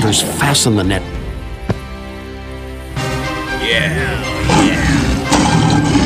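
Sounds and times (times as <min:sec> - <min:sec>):
speech: 0:00.1 - 0:01.2, 0:03.7 - 0:04.8
lion roaring loudly: 0:04.1 - 0:06.0.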